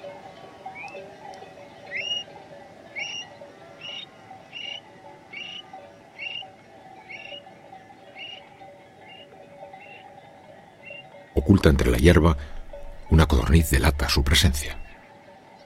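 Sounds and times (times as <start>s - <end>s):
Eurasian stone-curlew giving shrill whistling calls at dawn in dehesa farmland: 1.8s - 2.3s, 3.0s - 11.2s
speech: 11.4s - 14.8s
constant low outdoor rumble: 11.4s - 15.0s.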